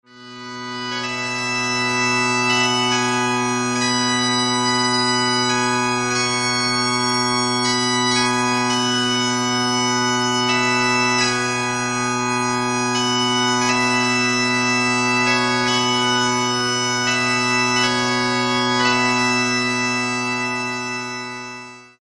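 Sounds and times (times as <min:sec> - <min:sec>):
solo bagpipes: 0:00.0 - 0:22.0.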